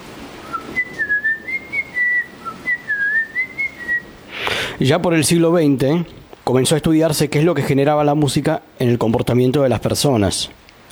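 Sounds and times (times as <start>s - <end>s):
person whistling a short melody: 0.4s - 4.1s
speech: 4.8s - 10.8s.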